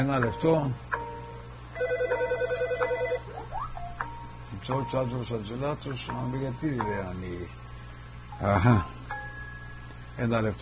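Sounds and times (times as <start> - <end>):
speech: 0.0 - 1.0, 4.6 - 7.7, 8.4 - 9.1, 10.2 - 10.6
telephone ringing with an electronic warble: 1.7 - 3.4.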